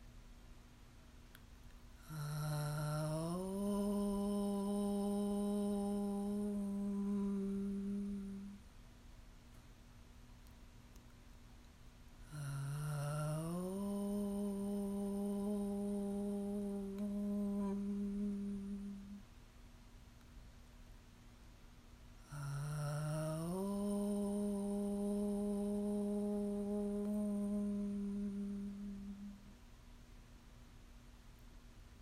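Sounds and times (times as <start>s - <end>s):
person chanting a mantra: 2.0s - 8.7s, 12.2s - 19.3s, 22.2s - 29.6s.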